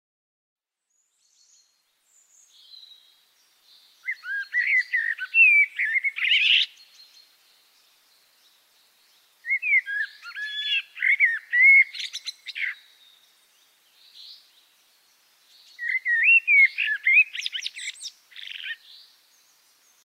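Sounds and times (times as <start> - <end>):
blackbird: 0.9 - 20.0.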